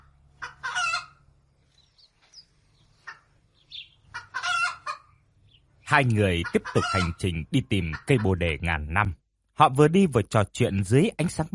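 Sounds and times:
roosters crowing at dawn: 0.0 - 1.3, 4.0 - 5.2
chicken clucks: 0.4 - 1.2, 4.0 - 5.1, 6.3 - 8.4
speech: 5.9 - 11.5.

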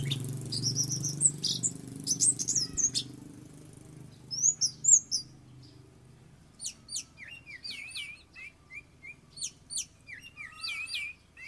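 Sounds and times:
Oriental magpie-robin singing: 0.0 - 3.2, 4.0 - 5.9, 6.5 - 11.4.

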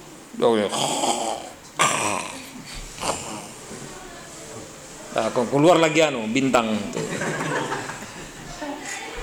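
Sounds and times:
speech: 0.4 - 2.8, 5.2 - 7.2
voice imitating snoring: 0.7 - 3.6
laughter: 6.9 - 9.0.

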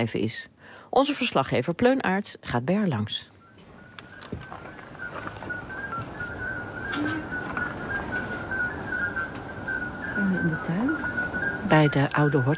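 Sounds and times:
speech: 0.0 - 3.3, 10.2 - 11.1, 11.7 - 12.5
faint background noise: 0.0 - 12.5
Common midwife toad chorus in a garden on a summer evening: 3.4 - 12.5.

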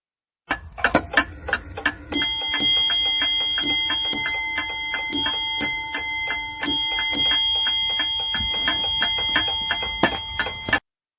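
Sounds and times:
steady mechanical ticking: 0.5 - 10.8
ship's bell clock ringing bells: 2.1 - 10.8.

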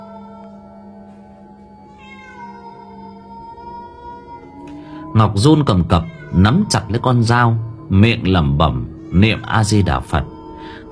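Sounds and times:
cat meowing at night, echoing from a graveyard: 1.8 - 4.7, 5.6 - 7.8, 9.0 - 10.4
speech: 5.2 - 10.8.

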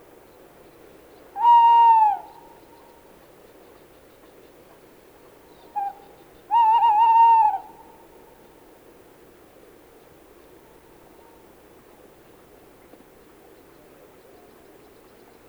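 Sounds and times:
tawny owl hooting: 1.4 - 2.4, 5.8 - 7.9.

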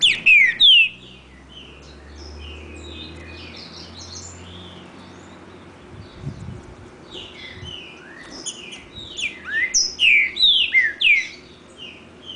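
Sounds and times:
green-winged saltator singing sweet whistled notes: 8.0 - 11.4.

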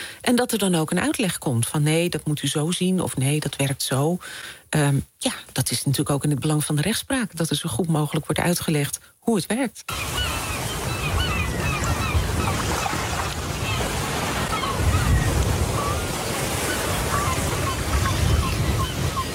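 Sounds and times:
speech: 0.3 - 10.4
seagulls screeching: 9.9 - 19.3
surf breaking along a shore: 9.9 - 19.3.

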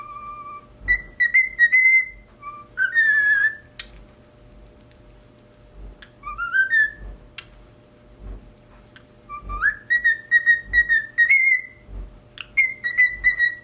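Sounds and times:
pied cockatiel whistling: 0.0 - 3.9, 6.1 - 7.0, 9.3 - 11.8, 12.4 - 13.6.

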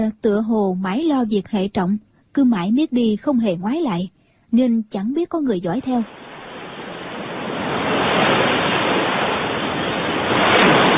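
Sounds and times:
speech: 0.0 - 6.2
ocean waves crashing against a rocky shore: 6.0 - 10.9.

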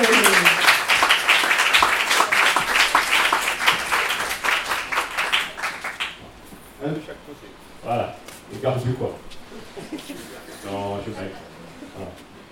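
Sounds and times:
laughter: 0.0 - 0.7, 9.5 - 12.2
audience applause at a science café: 0.0 - 6.3.

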